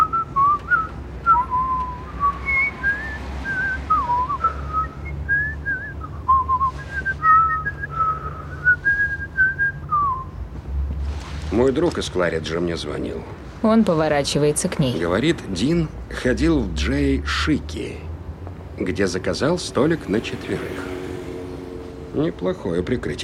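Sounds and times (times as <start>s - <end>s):
people whistling a wandering melodic tune: 0.0s - 10.4s
speech: 11.6s - 18.1s, 18.8s - 20.9s, 22.1s - 23.2s.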